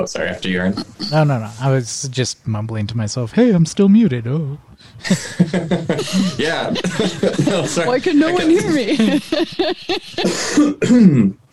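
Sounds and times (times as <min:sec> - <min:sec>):
speech: 0:00.0 - 0:11.4
throat clearing thick with phlegm from eating cheese: 0:00.7 - 0:01.2, 0:10.2 - 0:11.5
laughter: 0:05.0 - 0:10.6.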